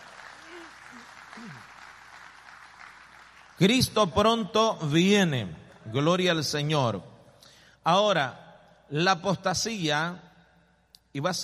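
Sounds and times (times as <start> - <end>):
audience clapping hands in sustained applause: 0.0 - 3.7
speech: 0.9 - 1.7, 3.6 - 7.1, 7.8 - 10.3, 11.1 - 11.4.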